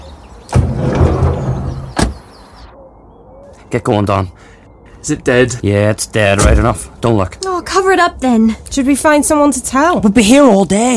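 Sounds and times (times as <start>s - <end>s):
bus door clunking open: 0.5s - 2.3s
speech: 3.7s - 10.9s.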